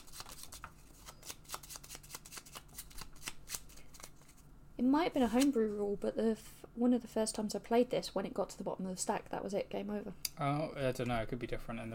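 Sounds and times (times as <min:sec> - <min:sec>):
deck of cards being riffle shuffled: 0:00.0 - 0:04.5, 0:05.2 - 0:05.8
speech: 0:04.8 - 0:11.9.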